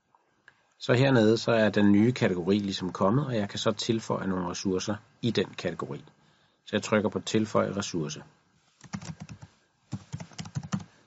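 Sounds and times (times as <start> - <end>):
speech: 0.8 - 9.2
computer keyboard typing: 8.8 - 10.9.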